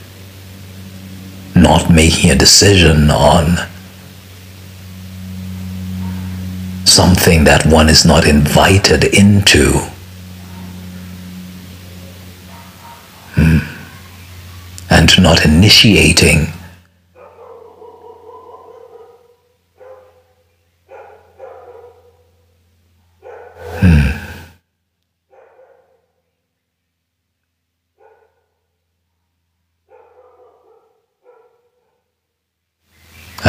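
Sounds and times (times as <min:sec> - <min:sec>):
speech: 0:01.6 - 0:03.7, 0:07.2 - 0:09.9, 0:15.2 - 0:16.6
dog barking: 0:06.0 - 0:06.4, 0:10.4 - 0:10.8, 0:12.0 - 0:13.3, 0:17.2 - 0:22.3, 0:23.1 - 0:23.8, 0:25.3 - 0:26.2, 0:28.0 - 0:28.6, 0:29.9 - 0:32.1.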